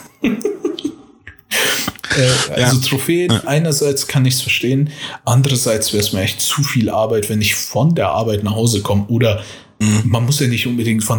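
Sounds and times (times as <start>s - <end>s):
person sneezing: 1.5s - 2.8s
speech: 2.2s - 11.1s.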